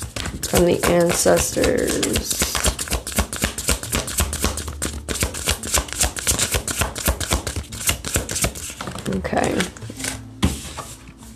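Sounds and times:
tarot cards being shuffled and drawn: 0:00.0 - 0:11.3
speech: 0:00.5 - 0:02.5, 0:09.2 - 0:09.7.

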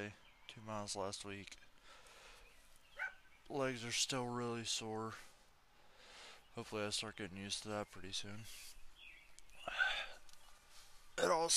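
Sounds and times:
speech: 0:00.0 - 0:02.0, 0:03.5 - 0:05.3, 0:06.6 - 0:08.7, 0:11.3 - 0:11.5
dog barking: 0:03.0 - 0:03.2.

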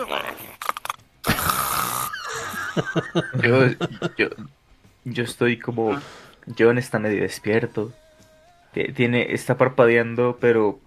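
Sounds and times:
person imitating snoring with their voice: 0:00.0 - 0:02.5
laughter: 0:02.1 - 0:04.5
speech: 0:02.8 - 0:08.0, 0:08.7 - 0:10.8
short vocal bursts: 0:05.8 - 0:06.5.

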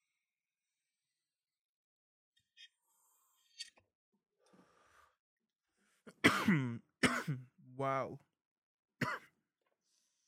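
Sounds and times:
person coughing after taking a hit: 0:06.1 - 0:07.5, 0:09.0 - 0:09.3
speech: 0:06.2 - 0:08.3.

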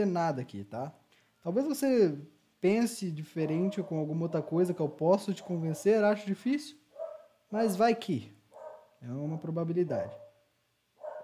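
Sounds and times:
speech: 0:00.0 - 0:06.8, 0:07.5 - 0:08.4, 0:09.0 - 0:10.2
dog barking: 0:03.4 - 0:04.7, 0:05.3 - 0:06.1, 0:06.9 - 0:07.4, 0:08.5 - 0:10.4, 0:11.0 - 0:11.2.

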